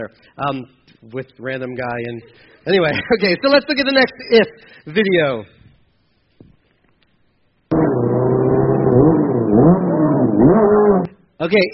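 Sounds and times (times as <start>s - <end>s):
speech: 0.0s - 5.6s, 11.4s - 11.7s
motorcycle engine revving during a wheelie: 7.7s - 11.2s.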